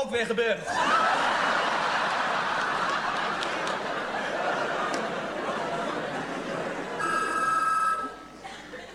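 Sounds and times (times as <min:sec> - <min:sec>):
speech: 0:00.1 - 0:01.2
laughter: 0:00.7 - 0:07.4, 0:08.2 - 0:08.9
telephone ringing with a bright electronic trill: 0:06.9 - 0:08.3.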